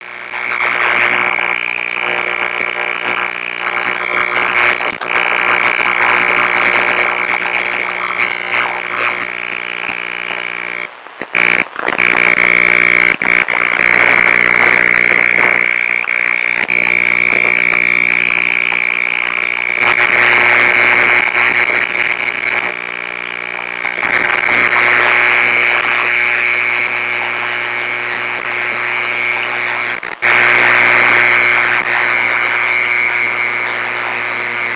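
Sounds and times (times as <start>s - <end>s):
noise: 0.0s - 34.7s.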